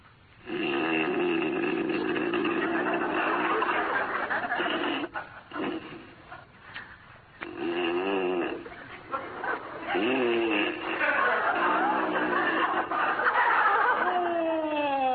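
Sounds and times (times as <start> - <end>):
man snoring loudly in bed: 0.4 - 3.4, 4.5 - 6.0, 7.4 - 8.6, 9.9 - 12.3
laughter: 2.4 - 7.0, 8.6 - 15.1.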